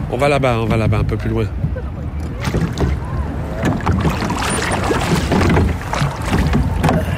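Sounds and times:
speech: 0.1s - 1.9s
rowboat oars dipping and splashing in water: 2.0s - 7.1s.

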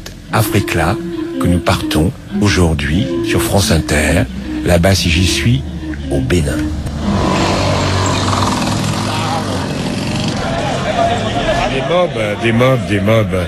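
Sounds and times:
dense street noise: 0.0s - 13.4s
speech: 0.3s - 7.2s, 11.9s - 13.4s
small motorcycle taxi engine passing: 6.9s - 10.4s.

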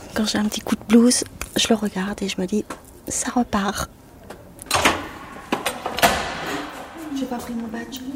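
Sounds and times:
speech: 0.2s - 4.0s, 7.2s - 8.1s
door opening: 4.6s - 7.7s
door handle and latch clicks and rattles: 4.7s - 6.5s.

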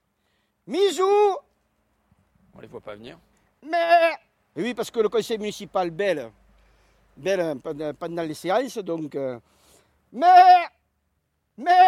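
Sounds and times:
speech: 0.7s - 1.5s, 2.6s - 6.4s, 7.2s - 10.7s, 11.6s - 11.8s
white goats bleating as they run up: 3.6s - 4.2s, 10.2s - 10.7s, 11.6s - 11.8s.

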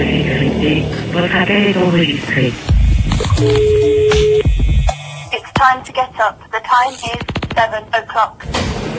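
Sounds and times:
metro station rumble and hiss: 0.0s - 8.4s
speech: 0.6s - 2.7s, 3.4s - 4.0s, 5.6s - 8.8s.

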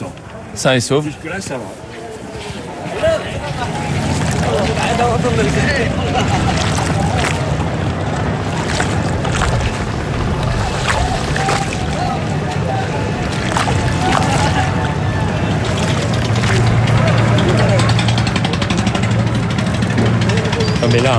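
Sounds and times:
boat engines droning in the port of Dakar: 0.0s - 21.1s
steady wash of wind in the port of Dakar: 0.0s - 21.1s
speech: 0.6s - 7.0s
indistinct voices murmuring: 1.8s - 21.1s
water lapping at the riverside in the port of Dakar: 2.3s - 21.1s
laughter: 2.9s - 8.0s, 10.6s - 20.8s.

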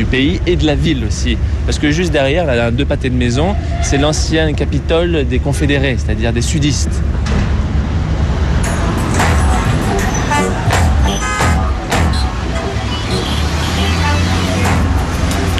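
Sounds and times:
steady roar of traffic engines: 0.0s - 15.5s
speech: 0.1s - 7.5s
car horns honking in street traffic: 8.7s - 15.5s.

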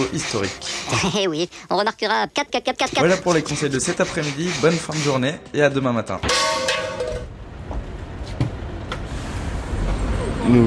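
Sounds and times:
speech: 0.0s - 6.6s
large bus engine drone in an open parking lot: 7.4s - 10.6s.

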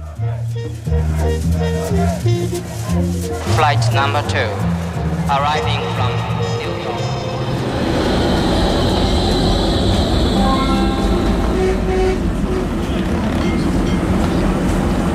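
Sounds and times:
tram rolling rumble at a city tram stop in Nantes: 0.0s - 15.1s
speech: 0.2s - 7.0s
faint tonal whine of a tram: 5.9s - 14.0s.

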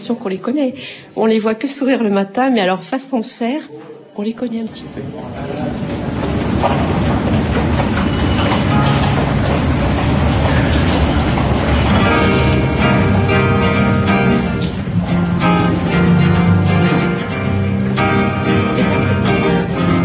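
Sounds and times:
speech: 0.0s - 5.8s
RER commuter train rumbling on rails: 4.8s - 20.0s.

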